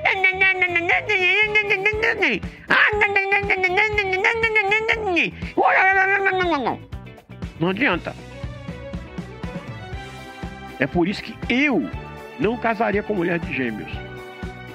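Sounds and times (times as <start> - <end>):
person imitating a cat meowing: 0.0 - 6.8
speech: 0.5 - 6.9, 7.6 - 8.3, 10.8 - 14.1.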